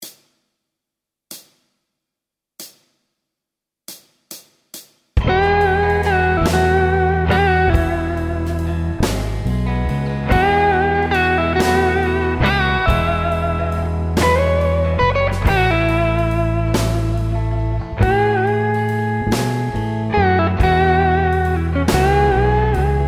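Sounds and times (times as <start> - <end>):
solo performance: 5.2 - 23.0.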